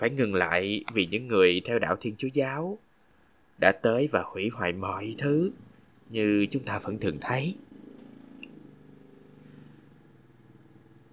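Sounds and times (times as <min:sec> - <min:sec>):
speech: 0:00.0 - 0:02.9, 0:03.6 - 0:07.6
motorbike engine droning: 0:05.0 - 0:11.1.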